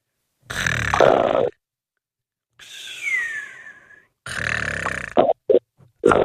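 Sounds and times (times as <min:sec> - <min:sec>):
person snoring over a telephone line: 0:00.5 - 0:01.5, 0:02.6 - 0:05.3.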